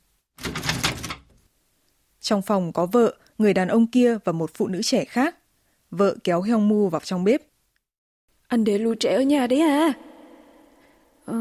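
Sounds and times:
door being flung open: 0.4s - 1.4s
speech: 2.3s - 7.5s, 8.5s - 10.1s.

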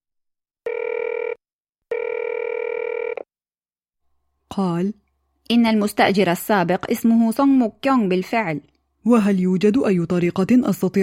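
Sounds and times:
telephone ringing on an outgoing call: 0.7s - 3.3s
speech: 4.6s - 11.0s.

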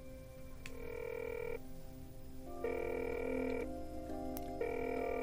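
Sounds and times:
telephone ringback tones: 0.7s - 1.6s, 2.6s - 3.8s, 4.6s - 5.2s.

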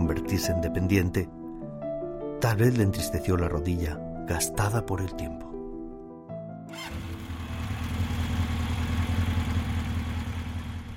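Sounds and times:
speech: 0.2s - 1.4s, 2.4s - 5.5s
small motorcycle engine starting and idling: 6.7s - 10.9s.

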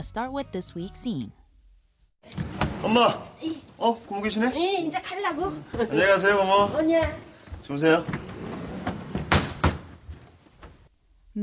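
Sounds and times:
speech: 0.0s - 1.4s, 2.2s - 8.2s
sliding door to a bedroom thrown open with rattling bangs: 2.3s - 3.2s, 7.9s - 10.8s.

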